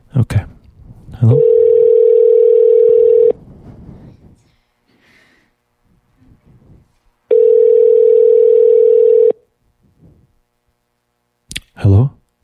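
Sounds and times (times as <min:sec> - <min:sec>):
speech: 0:01.2 - 0:01.5
ringing tone of an unanswered telephone call: 0:01.2 - 0:03.4, 0:07.3 - 0:09.4.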